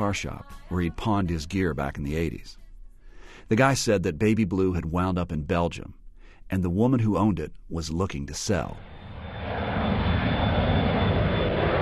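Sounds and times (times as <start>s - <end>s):
speech: 0.0s - 2.6s, 3.4s - 8.9s
loud airplane engine drone: 8.6s - 11.7s.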